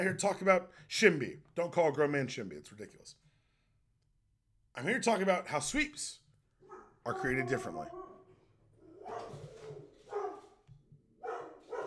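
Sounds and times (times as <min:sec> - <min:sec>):
speech: 0:00.0 - 0:03.2, 0:04.8 - 0:06.2, 0:07.0 - 0:08.1
dog barking: 0:06.6 - 0:08.3, 0:08.9 - 0:10.6, 0:11.2 - 0:11.8.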